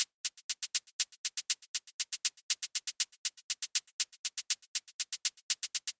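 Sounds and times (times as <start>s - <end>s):
shaker loop: 0.0s - 5.9s.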